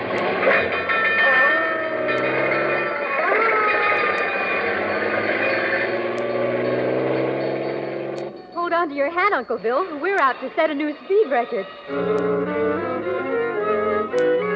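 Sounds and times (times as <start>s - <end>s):
fire engine engine roar: 0.0s - 8.5s, 11.9s - 14.5s
fire engine bell clanging: 0.0s - 13.3s
fire engine siren wailing: 0.0s - 14.5s
speech: 8.8s - 13.4s.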